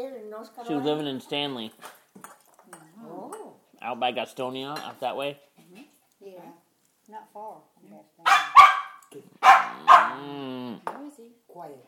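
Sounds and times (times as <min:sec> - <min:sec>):
speech: 0:00.0 - 0:02.0, 0:03.8 - 0:05.8, 0:07.1 - 0:11.8
dog barking into a drawn-out howling bark: 0:08.2 - 0:10.4.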